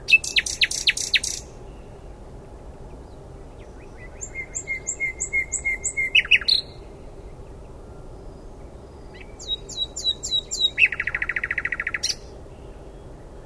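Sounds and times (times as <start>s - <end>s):
Common nightingale Luscinia megarhynchos singing: 0.0s - 2.1s, 2.9s - 13.4s.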